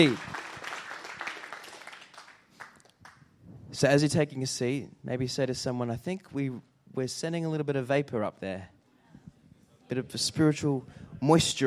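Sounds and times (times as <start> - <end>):
speech: 0.0 - 0.3, 3.8 - 8.8, 9.9 - 11.6
crowd applauding: 0.0 - 3.2.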